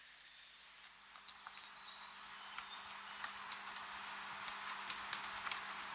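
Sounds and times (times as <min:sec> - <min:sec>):
shrill squeaky calls of seabird parent and chicks: 0:00.0 - 0:02.0
faint scattered ticks: 0:02.5 - 0:05.9.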